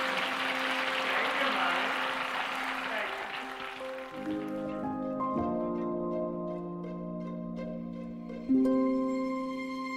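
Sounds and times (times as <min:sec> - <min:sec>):
crowd applauding and cheering: 0:00.0 - 0:05.4
sustained orchestral music with held notes: 0:00.0 - 0:09.9.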